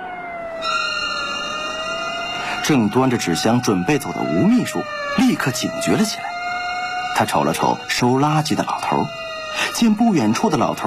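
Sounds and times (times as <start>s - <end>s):
police car siren in the distance: 0.0s - 10.8s
speech: 2.6s - 6.4s, 7.2s - 10.8s.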